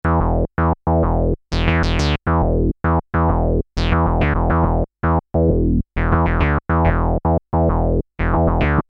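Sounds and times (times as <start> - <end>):
bass line: 0.0 - 8.8.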